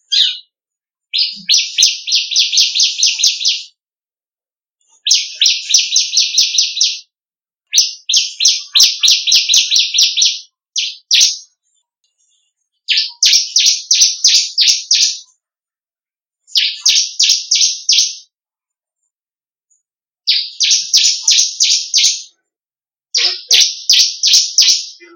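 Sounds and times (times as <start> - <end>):
crystal ciblek bird singing melodiously: 0.0 - 0.5, 1.1 - 3.7, 5.0 - 7.0, 7.7 - 11.5, 12.8 - 15.2, 16.5 - 18.3, 20.3 - 22.3, 23.2 - 25.1.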